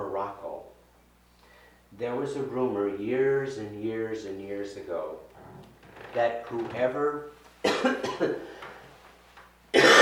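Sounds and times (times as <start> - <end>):
speech: 2.0 - 5.3, 6.1 - 8.5
person clearing throat: 7.6 - 8.5, 9.7 - 10.0
raspy coughing: 7.6 - 8.6, 9.7 - 10.0.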